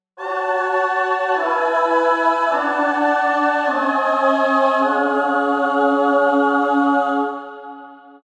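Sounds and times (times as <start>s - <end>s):
choir in 17-ET tuning: 0.2s - 8.2s.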